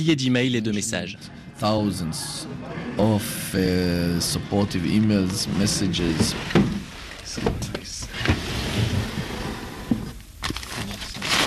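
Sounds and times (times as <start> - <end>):
speech: 0.0 - 6.6, 7.4 - 8.0
faint murmur of voices: 0.0 - 7.9
drawers sliding open and shut in an apartment: 5.1 - 11.4.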